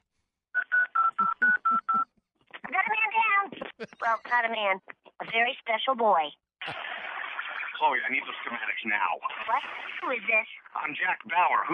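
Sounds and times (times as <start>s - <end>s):
telephone touch-tone dialling beeps: 0.6s - 2.1s
speech: 4.1s - 6.8s, 7.8s - 11.7s.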